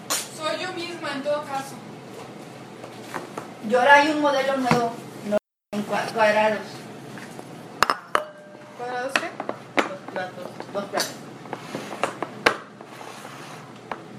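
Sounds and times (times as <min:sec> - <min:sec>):
speech: 0:01.1 - 0:02.0, 0:03.6 - 0:06.8, 0:10.2 - 0:11.2
ceramic plates of several sizes clinking and knocking together: 0:07.8 - 0:12.9.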